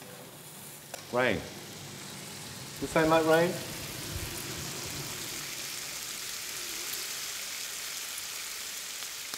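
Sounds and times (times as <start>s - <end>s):
steady dense sizzling crackle: 0.0s - 9.3s
speech: 1.1s - 1.6s, 2.8s - 3.8s.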